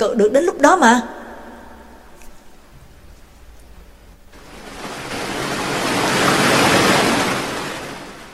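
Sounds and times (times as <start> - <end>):
speech: 0.0 - 1.2
ocean wave crashing down on a small boat at sea: 4.4 - 8.3.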